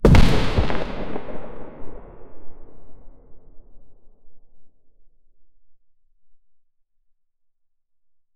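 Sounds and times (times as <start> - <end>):
red wooden barrel powder explosion: 0.0 - 2.9.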